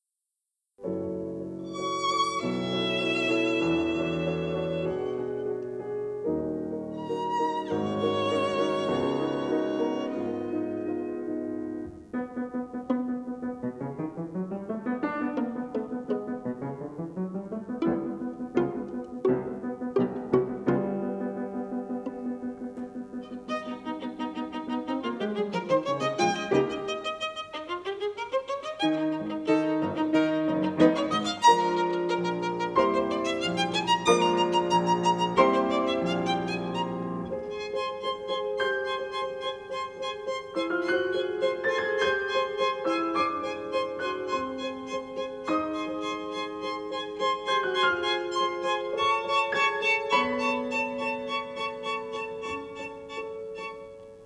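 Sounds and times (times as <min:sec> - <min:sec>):
piano in a sonata in G minor: 0:00.8 - 0:54.2
violin in a sonata in G minor: 0:01.4 - 0:54.2.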